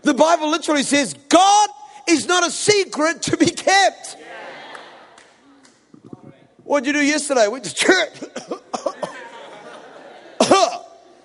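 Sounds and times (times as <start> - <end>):
speech: 0.0 - 4.4, 6.7 - 9.0
laughter: 4.2 - 5.4, 8.2 - 11.2
person clearing throat: 8.2 - 9.2, 10.4 - 11.0.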